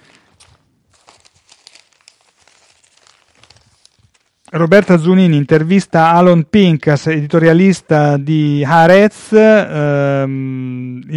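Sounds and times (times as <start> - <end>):
newspaper pages being handled, rustling: 0.0 - 5.8
speech: 4.5 - 11.1.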